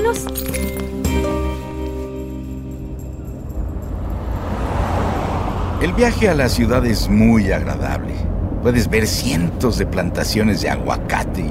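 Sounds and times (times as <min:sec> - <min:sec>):
speech: 0:00.1 - 0:00.5, 0:05.8 - 0:11.4
car engine hum: 0:01.9 - 0:11.4
tire noise of a car driving on a road: 0:02.3 - 0:11.4.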